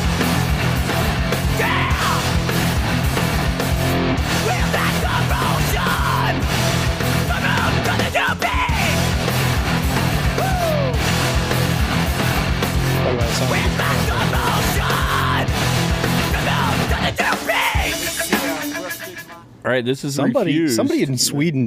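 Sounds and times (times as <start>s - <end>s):
pounding drums: 0.0s - 10.4s, 11.0s - 19.4s
distorted guitars: 0.0s - 19.6s
hardcore punk music: 0.0s - 19.6s
raw screamed vocals: 1.5s - 2.4s, 4.4s - 6.4s, 7.2s - 9.1s, 10.2s - 11.0s, 13.5s - 15.5s, 16.3s - 19.4s
speech: 19.7s - 21.6s.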